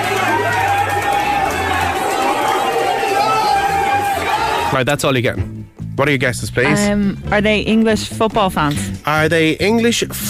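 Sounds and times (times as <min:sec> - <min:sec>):
big crowd celebrating in New York, many voices chattering and calling out: 0:00.0 - 0:04.8
speech: 0:04.7 - 0:10.2.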